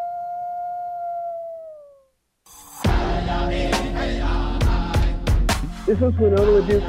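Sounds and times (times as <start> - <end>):
wolf howling: 0.0 - 2.1
loud dense burst of music-like sound: 2.9 - 6.8
speech: 5.9 - 6.8.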